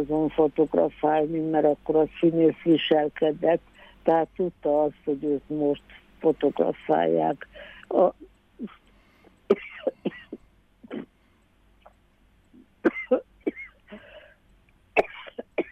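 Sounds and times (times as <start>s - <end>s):
speech: 0.0s - 8.8s, 9.5s - 10.2s, 12.8s - 13.3s
person coughing in harsh bursts: 9.5s - 11.1s, 12.9s - 14.1s, 15.0s - 15.7s.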